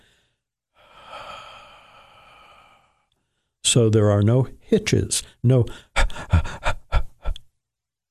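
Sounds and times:
long slow steady exhale: 0:00.0 - 0:03.6
short breath in: 0:00.0 - 0:03.6
speech: 0:03.7 - 0:05.9.

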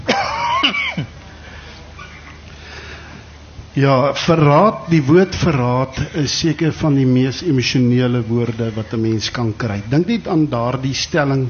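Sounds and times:
raspy throaty coughing: 0:00.0 - 0:01.2, 0:02.0 - 0:02.5, 0:05.8 - 0:06.4
speech: 0:03.8 - 0:11.4.

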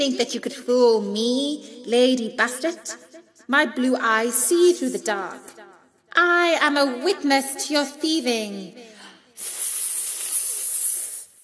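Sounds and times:
speech: 0:00.0 - 0:05.6, 0:06.2 - 0:08.9
breathy hiss: 0:09.0 - 0:11.4.

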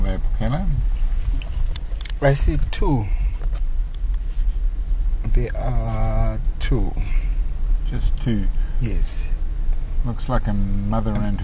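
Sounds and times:
several car engines idling from cars stopped to watch wildlife: 0:00.0 - 0:11.4
speech: 0:00.4 - 0:01.0, 0:02.2 - 0:03.2, 0:05.4 - 0:07.2, 0:07.9 - 0:09.3, 0:10.0 - 0:11.4.

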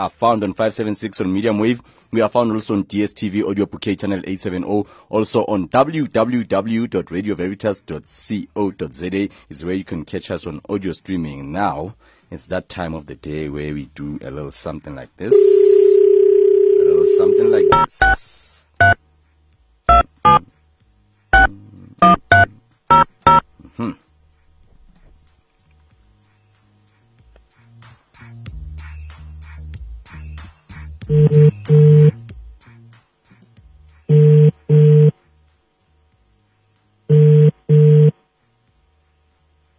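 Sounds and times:
speech: 0:00.0 - 0:16.4, 0:17.2 - 0:19.0, 0:20.2 - 0:20.6, 0:23.8 - 0:24.0
phone line dial tone: 0:15.3 - 0:17.9, 0:31.1 - 0:32.2, 0:34.1 - 0:35.1, 0:37.1 - 0:38.2
telephone keypad beeps: 0:16.9 - 0:18.2, 0:19.9 - 0:20.4, 0:21.4 - 0:23.4.

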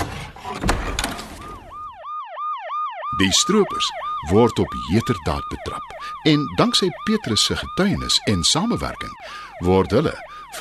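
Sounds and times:
door banging open with a heavy thunk and clatter: 0:00.0 - 0:01.8
police siren wailing in rapid rising-and-falling sweeps: 0:00.8 - 0:10.5
speech: 0:03.2 - 0:10.5.

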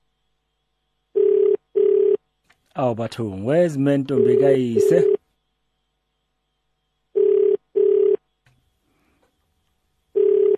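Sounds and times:
outgoing call ringback tone through a phone line: 0:01.2 - 0:02.2, 0:04.1 - 0:05.2, 0:07.2 - 0:08.2, 0:10.1 - 0:10.5
speech: 0:02.8 - 0:05.2.

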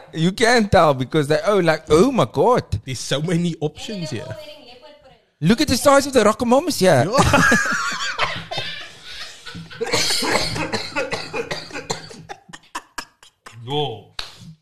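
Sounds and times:
speech: 0:00.1 - 0:04.6, 0:05.4 - 0:08.0, 0:13.7 - 0:14.1
strained laugh-like vocal sound: 0:07.2 - 0:13.7
person coughing in a harsh raspy coughing fit: 0:09.8 - 0:13.6.

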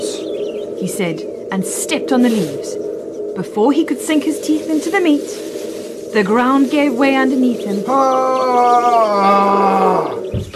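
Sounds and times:
speech: 0:00.8 - 0:10.5
angry lion roaring in a deep pit: 0:07.9 - 0:10.5.

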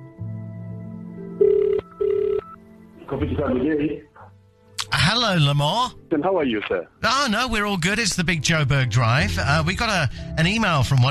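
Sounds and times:
double ring tone of an outgoing phone call: 0:01.4 - 0:02.6
speech: 0:03.2 - 0:04.1, 0:05.0 - 0:11.0.

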